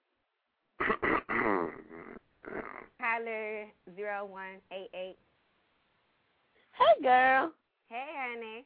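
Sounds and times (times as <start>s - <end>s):
person coughing: 0.8s - 2.1s
rasping throat clearing: 0.8s - 2.9s
speech: 3.2s - 5.2s, 7.0s - 8.6s.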